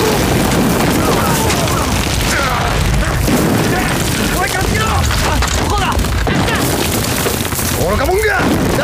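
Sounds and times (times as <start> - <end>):
artillery shells exploding on a battlefield: 0.0 - 8.8.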